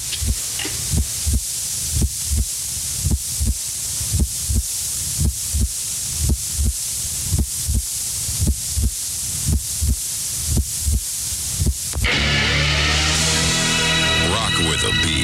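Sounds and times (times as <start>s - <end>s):
steady fast heartbeat broadcast over radio: 0.0s - 12.0s
faint hiss: 0.0s - 15.2s
music snippet: 12.0s - 15.2s.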